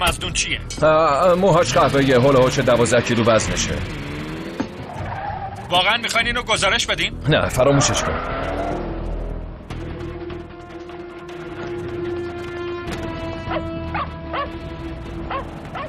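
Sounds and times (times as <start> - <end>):
speech: 0.0 - 4.0, 5.7 - 8.6
dog barking and yipping: 13.5 - 14.6, 15.2 - 15.8.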